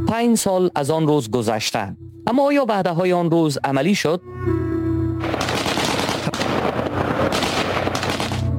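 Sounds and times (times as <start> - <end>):
speech: 0.1 - 4.6
automatic gunfire: 5.2 - 8.5.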